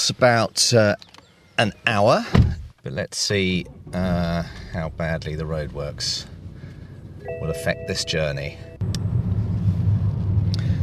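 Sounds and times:
car engine and road rumble driving into Hitchin on the A602 during roadworks: 0:00.0 - 0:10.8
speech: 0:00.1 - 0:06.4, 0:07.2 - 0:09.0.

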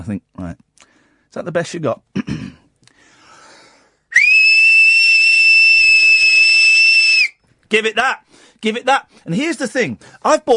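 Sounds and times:
speech: 0:00.0 - 0:00.7, 0:01.3 - 0:02.4, 0:07.7 - 0:10.5
loud piercing human whistle: 0:04.1 - 0:07.4.

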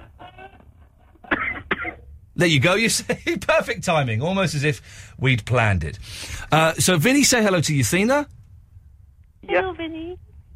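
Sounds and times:
raspy coughs: 0:01.2 - 0:02.1
speech: 0:02.4 - 0:08.4.

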